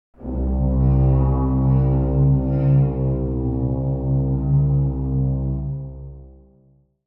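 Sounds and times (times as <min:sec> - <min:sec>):
creepy cartoon strings: 0:00.2 - 0:05.8.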